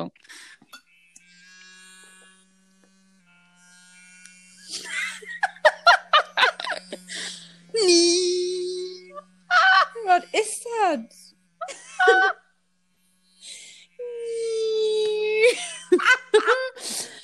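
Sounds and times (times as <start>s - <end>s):
speech: 0.0s - 0.6s, 7.8s - 8.6s, 10.0s - 11.2s
electric toothbrush buzzing in polishing mode: 0.3s - 17.2s
people laughing: 4.7s - 7.4s, 9.1s - 10.2s, 11.6s - 12.4s, 15.4s - 16.8s.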